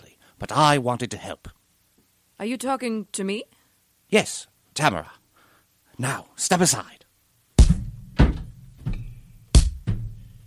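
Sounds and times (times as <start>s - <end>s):
speech: 0.4s - 1.6s, 2.4s - 5.2s, 6.0s - 7.0s
heavy booming thuds against a door from someone trying to break through: 7.6s - 9.0s.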